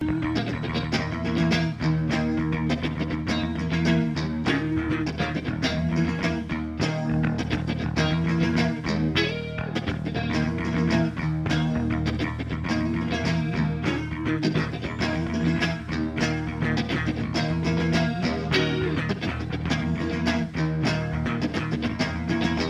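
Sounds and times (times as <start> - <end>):
bass guitar doodle: 0.0 - 22.6.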